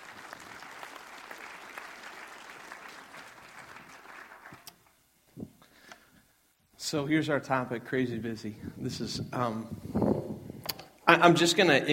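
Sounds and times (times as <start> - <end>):
audience applause: 0.0 - 4.8
speech: 6.9 - 10.1, 11.2 - 11.9.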